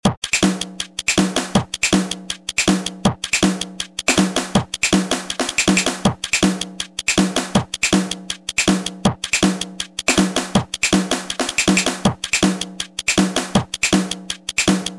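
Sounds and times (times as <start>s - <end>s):
warm-up beat: 0.0s - 14.9s.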